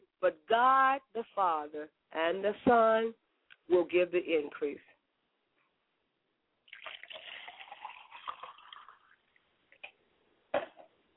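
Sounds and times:
speech: 0:00.2 - 0:04.9
liquid poured out as a libation: 0:06.6 - 0:09.9
drips and splashes of trickling liquid: 0:06.7 - 0:09.4.

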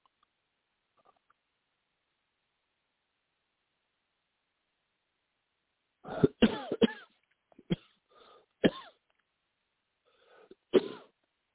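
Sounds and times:
wet phlegmy coughing: 0:06.0 - 0:08.0, 0:08.6 - 0:09.0, 0:10.5 - 0:11.1.

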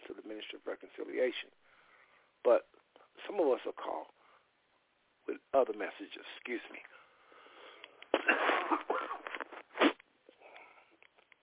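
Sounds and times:
speech: 0:00.3 - 0:01.6, 0:02.4 - 0:04.2, 0:05.3 - 0:06.9
wheezy strained breathing of an ill person: 0:07.0 - 0:11.0
ill person coughing: 0:08.1 - 0:10.0.

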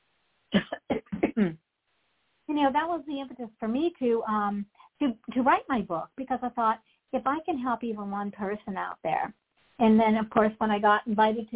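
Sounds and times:
person coughing from a tickle in the throat: 0:00.6 - 0:01.6
throat clearing: 0:00.6 - 0:01.6
speech: 0:01.4 - 0:01.6, 0:02.6 - 0:11.5.

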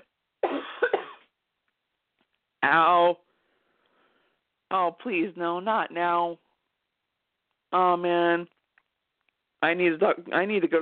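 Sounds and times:
person coughing in a coughing fit: 0:00.4 - 0:01.3
speech: 0:02.6 - 0:03.2, 0:04.7 - 0:06.4, 0:07.7 - 0:08.6, 0:09.6 - 0:10.7.

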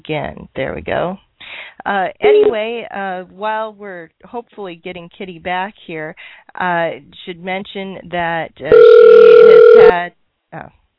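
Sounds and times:
speech: 0:00.0 - 0:10.8
telephone electronic ring tone: 0:02.2 - 0:02.6, 0:08.7 - 0:09.9.

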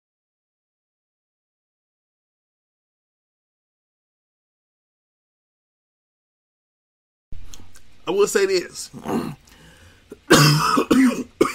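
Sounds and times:
speech: 0:08.1 - 0:09.4, 0:10.3 - 0:11.3
person clearing throat: 0:10.1 - 0:11.5
person coughing while choking up: 0:10.1 - 0:11.5.

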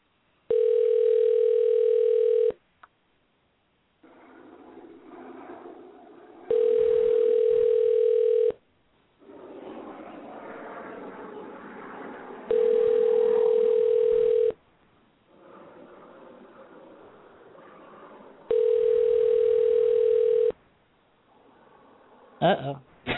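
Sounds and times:
telephone ringback tones while placing an outgoing call: 0:00.5 - 0:02.6, 0:06.5 - 0:08.6, 0:12.5 - 0:14.6, 0:18.5 - 0:20.6.

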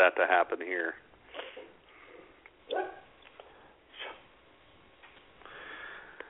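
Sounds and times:
speech: 0:00.0 - 0:01.1
soft hiss: 0:00.0 - 0:06.2
dog barking: 0:02.7 - 0:03.1.

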